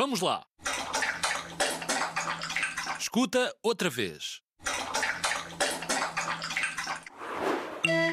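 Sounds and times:
speech: 0:00.0 - 0:00.6, 0:03.1 - 0:04.4
dog lapping up drinking water: 0:00.6 - 0:03.0, 0:04.6 - 0:07.1.

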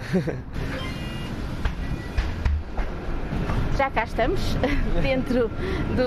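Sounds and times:
city bus engine rumble: 0:00.0 - 0:06.0
speech: 0:00.1 - 0:00.8, 0:03.7 - 0:06.0
faint electronic beep on a city bus: 0:00.7 - 0:02.2.

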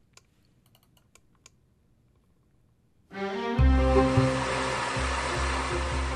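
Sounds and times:
powerful vacuum cleaner running: 0:03.6 - 0:06.1.

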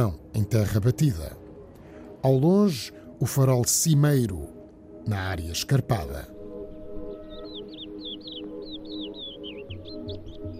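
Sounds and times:
speech: 0:00.0 - 0:01.4, 0:02.2 - 0:06.3
constant low drone: 0:00.0 - 0:10.5
small bird chirping as it flies up: 0:07.1 - 0:10.5.

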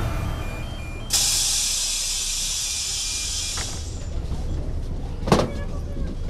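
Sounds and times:
bus rumbling low and steady: 0:00.0 - 0:06.2
loud pneumatic hiss of a bus: 0:01.1 - 0:04.1.

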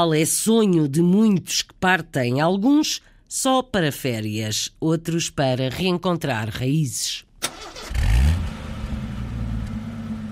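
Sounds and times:
speech: 0:00.0 - 0:08.2
car engine cranking and accelerating: 0:07.8 - 0:10.3.

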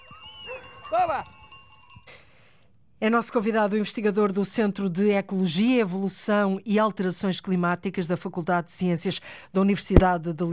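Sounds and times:
small bells jingling on grazing goats and sheep: 0:00.0 - 0:02.2
speech: 0:00.9 - 0:01.4, 0:03.0 - 0:10.5.

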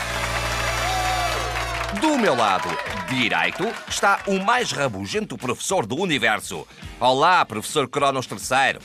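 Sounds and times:
low hum: 0:00.0 - 0:01.9
faint cheers and whistles from a quiz contest crowd: 0:00.0 - 0:04.1
crowd applause for two contestants at a quiz contest: 0:00.0 - 0:05.0
speech: 0:02.0 - 0:08.8.

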